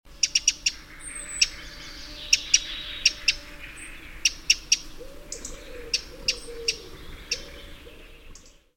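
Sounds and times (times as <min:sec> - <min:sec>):
Eurasian wren Troglodytes troglodytes calling with sharp dry ticking notes: 0:00.2 - 0:01.6, 0:02.3 - 0:07.7.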